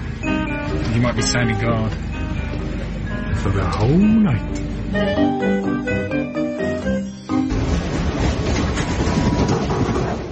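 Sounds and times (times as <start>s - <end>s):
passenger train running along the rails: 0.0s - 5.8s, 6.7s - 10.3s
tonal music: 0.0s - 7.6s
speech: 1.0s - 2.2s, 3.4s - 6.4s.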